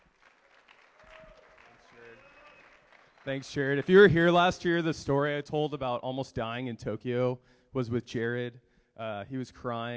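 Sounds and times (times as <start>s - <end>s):
room full of people applauding: 0.0s - 4.5s
speech: 3.2s - 9.9s.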